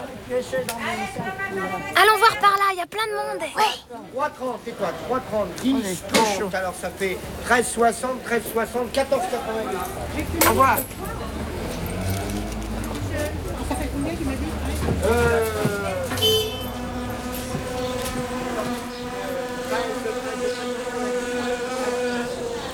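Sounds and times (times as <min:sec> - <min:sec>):
faint voices murmuring: 0:00.0 - 0:22.7
speech: 0:00.3 - 0:11.2, 0:15.0 - 0:15.8
wasps buzzing: 0:10.0 - 0:22.7.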